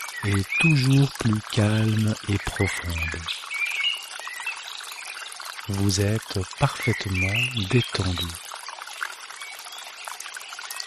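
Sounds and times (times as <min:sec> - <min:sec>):
gentle trickling water: 0:00.0 - 0:10.8
speech: 0:00.2 - 0:03.5, 0:05.7 - 0:08.4.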